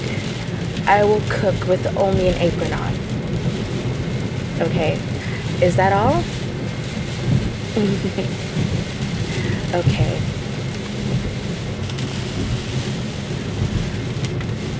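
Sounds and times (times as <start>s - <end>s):
heavy rain pouring down: 0.0s - 14.7s
low thunder rumbling: 0.0s - 14.7s
speech: 0.9s - 3.1s, 4.6s - 6.4s, 7.7s - 8.8s, 9.7s - 10.4s.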